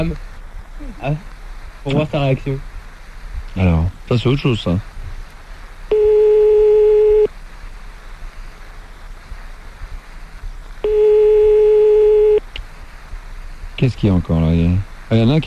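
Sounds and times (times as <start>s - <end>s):
speech: 0.0s - 2.7s, 3.6s - 4.9s, 13.8s - 15.4s
low hiss: 0.0s - 15.4s
telephone line tones while a call is placed: 5.9s - 7.3s, 10.8s - 12.4s.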